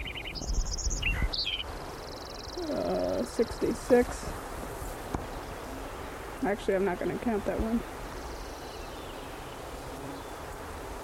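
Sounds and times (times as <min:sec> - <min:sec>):
sparrow song: 0:00.0 - 0:04.2, 0:05.2 - 0:11.0
steady low wind-like noise: 0:00.0 - 0:11.0
speech: 0:02.7 - 0:04.4, 0:06.4 - 0:08.0.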